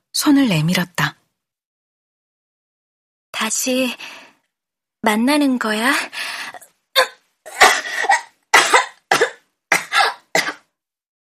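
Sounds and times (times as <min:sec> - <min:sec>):
speech: 0:00.2 - 0:01.2, 0:03.5 - 0:04.2, 0:05.0 - 0:06.5
harsh coughing fit: 0:07.5 - 0:10.7.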